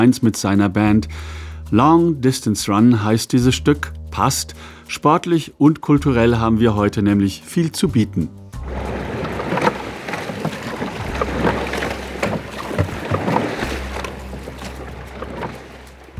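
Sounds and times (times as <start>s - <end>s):
speech: 0.0s - 8.9s
low rumble: 8.4s - 16.1s
oars of an eight-man racing rowing boat splashing through water: 8.6s - 16.1s.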